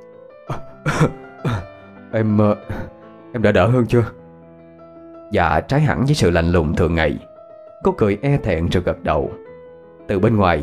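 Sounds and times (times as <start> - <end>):
voice performing coughing of a sick man in a hospital bed: 0.5 - 1.8
speech: 1.0 - 1.2, 2.1 - 4.2, 5.3 - 9.4, 10.1 - 10.6.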